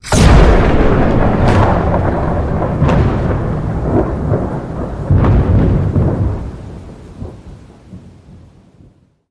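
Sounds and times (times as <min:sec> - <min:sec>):
death explosion: 0:00.0 - 0:07.4.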